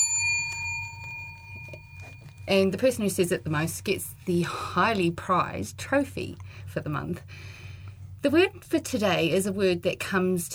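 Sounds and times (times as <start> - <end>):
single bell ringing with a clear bright tone: 0.0 - 2.6
low steady hum: 0.0 - 10.5
speech: 2.5 - 7.6, 8.2 - 10.5.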